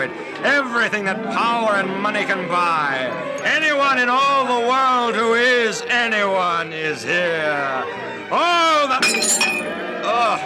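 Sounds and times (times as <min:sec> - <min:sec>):
speech: 0:00.0 - 0:10.4
drinking glass shattering: 0:09.0 - 0:09.9.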